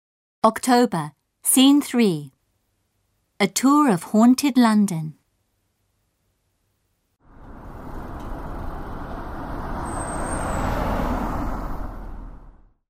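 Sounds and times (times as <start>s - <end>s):
speech: 0.4s - 2.4s, 3.4s - 5.2s
heavy double-decker bus engine rumbling as it pulls in: 7.2s - 12.8s
bus air-brake squeal: 9.8s - 11.2s.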